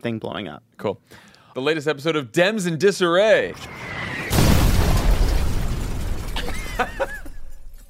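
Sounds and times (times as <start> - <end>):
speech: 0.0 - 4.1, 6.8 - 7.2
explosion sound effect with rumbling roar: 3.5 - 7.7.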